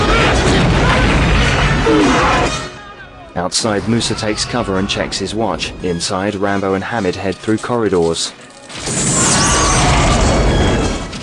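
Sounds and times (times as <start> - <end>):
explosions around a camp: 0.0 - 2.8, 8.8 - 11.2
speech: 3.4 - 9.5.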